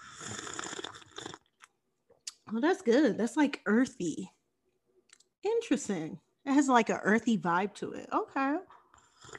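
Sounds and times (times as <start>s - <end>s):
person slurping tea: 0.0s - 1.6s, 9.0s - 9.3s
speech: 2.5s - 4.4s, 5.4s - 8.6s.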